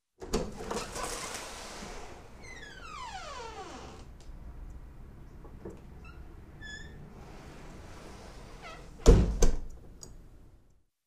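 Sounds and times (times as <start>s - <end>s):
wooden door opening and closing with creak: 0.2s - 4.2s, 5.6s - 9.6s.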